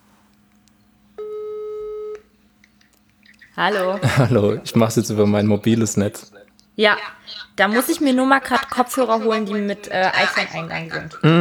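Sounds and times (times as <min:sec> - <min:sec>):
phone ringing tone beep: 0:01.2 - 0:02.3
laughter: 0:03.3 - 0:06.3, 0:07.7 - 0:11.3
speech: 0:03.6 - 0:11.3.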